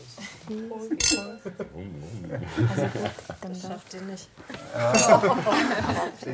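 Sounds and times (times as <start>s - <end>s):
speech: 0.5s - 6.3s
glasses clinking in a toast: 1.0s - 1.5s, 4.8s - 5.4s
laughter: 1.3s - 3.6s, 4.6s - 6.3s.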